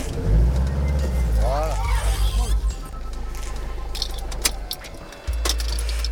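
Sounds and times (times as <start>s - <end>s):
car engine at low speed manoeuvring into a parking space: 0.0s - 6.1s
keys jangling: 3.1s - 6.1s.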